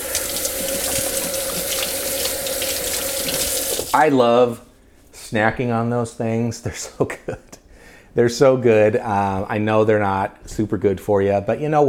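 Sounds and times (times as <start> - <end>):
water running from a tap while greasy hands are washed at a sink: 0.0 - 4.0
speech: 3.9 - 4.6, 5.3 - 7.5, 8.2 - 11.8.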